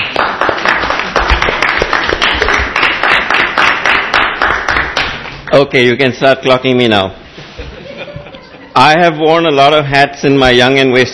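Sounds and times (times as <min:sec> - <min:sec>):
audience applause at a public proceeding: 0:00.0 - 0:05.2
speech: 0:05.6 - 0:07.2, 0:08.8 - 0:11.1
laughter: 0:07.4 - 0:08.8.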